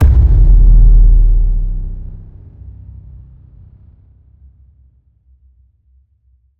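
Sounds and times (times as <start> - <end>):
low sci-fi cinematic hit: 0.0 - 3.0.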